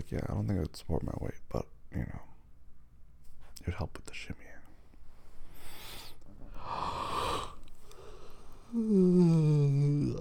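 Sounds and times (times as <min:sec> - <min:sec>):
speech: 0:00.1 - 0:02.3, 0:03.6 - 0:04.6, 0:08.7 - 0:10.2
person yawning: 0:06.6 - 0:08.1, 0:08.7 - 0:10.2.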